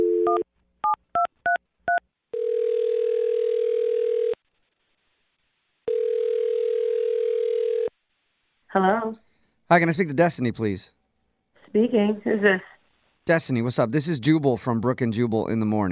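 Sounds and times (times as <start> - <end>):
long steady telephone ringback tones: 0.0 - 0.4, 2.3 - 4.4, 5.9 - 7.9
speech: 8.8 - 11.0, 11.7 - 12.7, 13.3 - 15.9.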